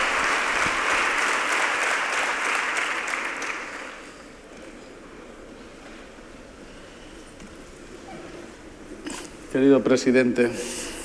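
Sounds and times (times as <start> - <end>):
large audience applause in an auditorium: 0.0 - 4.2
speech: 9.5 - 10.8.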